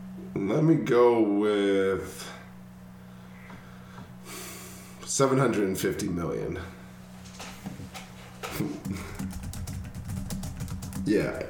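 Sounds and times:
low steady hum: 0:00.0 - 0:11.4
speech: 0:00.4 - 0:02.4, 0:05.1 - 0:06.8, 0:08.6 - 0:09.1, 0:11.1 - 0:11.4
person typing on a computer keyboard: 0:08.4 - 0:11.4.

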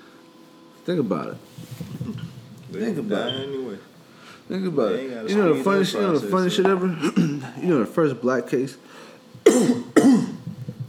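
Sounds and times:
speech: 0:00.8 - 0:03.9, 0:04.5 - 0:10.3
faint rough sounds: 0:01.0 - 0:04.6
harsh coughs: 0:06.9 - 0:07.6, 0:09.4 - 0:10.6.

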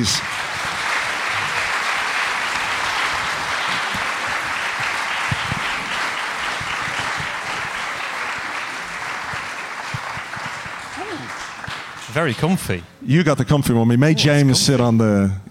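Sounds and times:
speech: 0:00.0 - 0:00.4, 0:12.2 - 0:15.4
audience cheers: 0:00.0 - 0:11.7
live audience applause on a stage: 0:00.0 - 0:12.8.

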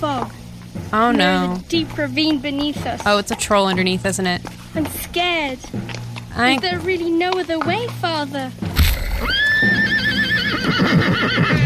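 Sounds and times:
faint hooves clopping: 0:00.0 - 0:11.6
speech: 0:00.0 - 0:11.6
horse neighing: 0:08.8 - 0:11.6.

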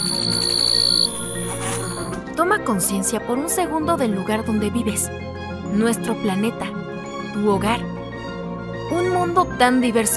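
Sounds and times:
high-pitched insect trill: 0:00.0 - 0:02.1
speech: 0:02.4 - 0:06.7, 0:07.4 - 0:07.9, 0:08.9 - 0:10.1.

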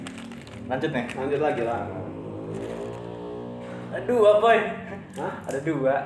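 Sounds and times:
motorcycle engine revving hard at speed: 0:00.0 - 0:04.7
speech: 0:00.7 - 0:02.7, 0:04.0 - 0:06.0.

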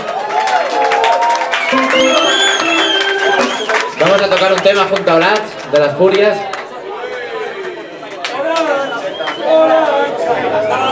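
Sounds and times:
concert crowd applauding: 0:00.0 - 0:10.9
shrill whistles from concert crowd: 0:01.6 - 0:04.8, 0:08.7 - 0:09.6
speech: 0:04.2 - 0:06.5.

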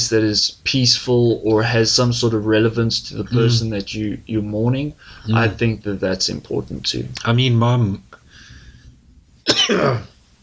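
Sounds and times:
speech: 0:00.1 - 0:08.2, 0:09.5 - 0:10.1
single human cough: 0:09.4 - 0:10.2.

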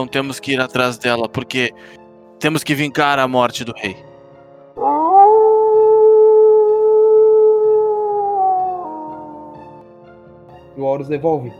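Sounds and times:
speech: 0:00.0 - 0:04.1, 0:10.8 - 0:11.5
wolf howling: 0:04.8 - 0:09.8.

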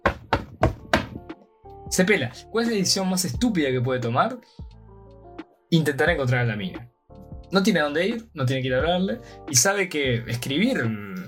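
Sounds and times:
heavy forceful knocking on a door: 0:00.0 - 0:01.3
speech: 0:01.9 - 0:04.7, 0:05.7 - 0:06.9, 0:07.5 - 0:11.2.

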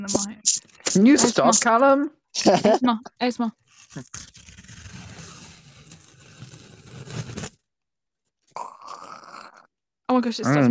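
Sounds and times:
speech: 0:00.0 - 0:04.4, 0:10.1 - 0:10.6
plastic film ripped off an eyeshadow palette: 0:03.6 - 0:07.6.

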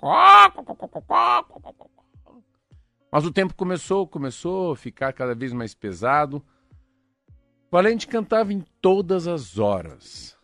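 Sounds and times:
speech: 0:00.0 - 0:01.9, 0:03.1 - 0:06.6, 0:07.7 - 0:10.4
voice imitating a rooster crowing and clucking: 0:00.0 - 0:01.9.

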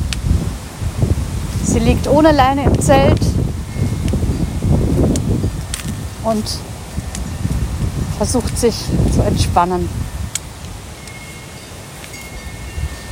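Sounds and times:
wind blowing and buffeting the microphone: 0:00.0 - 0:13.0
speech: 0:01.7 - 0:03.4, 0:06.3 - 0:06.7, 0:08.2 - 0:10.0
rustling: 0:02.8 - 0:13.0
wind chime tinkling: 0:03.7 - 0:05.7, 0:10.9 - 0:13.0.

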